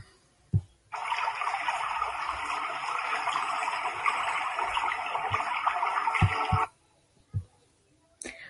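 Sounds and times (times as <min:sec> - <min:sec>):
soft low thumps: 0:00.0 - 0:00.8, 0:07.3 - 0:07.6
steady rain falling in a dense even hiss: 0:00.9 - 0:06.7.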